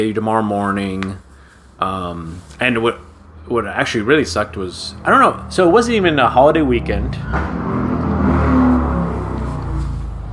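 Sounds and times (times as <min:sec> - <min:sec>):
speech: 0:00.0 - 0:01.2, 0:01.8 - 0:07.8
motorcycle engine revving outdoors: 0:03.8 - 0:10.3.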